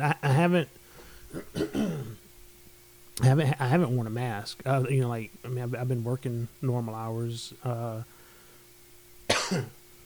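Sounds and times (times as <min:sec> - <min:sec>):
speech: 0:00.0 - 0:02.1, 0:03.2 - 0:08.1, 0:09.5 - 0:09.8
forceful cough: 0:01.3 - 0:02.3, 0:09.3 - 0:09.8.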